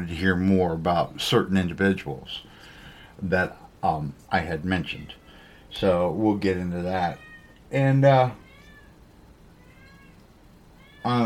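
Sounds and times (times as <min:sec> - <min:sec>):
speech: 0:00.0 - 0:02.5, 0:03.2 - 0:08.4, 0:11.0 - 0:11.2
agitated neutered male cat meowing loudly: 0:07.0 - 0:07.6, 0:08.4 - 0:09.0, 0:09.6 - 0:10.2, 0:10.8 - 0:11.2.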